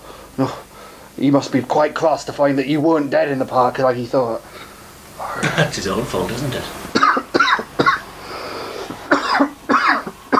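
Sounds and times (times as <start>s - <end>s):
speech: 0.4s - 4.7s, 5.4s - 6.8s
person coughing in harsh hacking bursts: 5.2s - 5.8s, 7.0s - 8.0s, 9.1s - 10.3s.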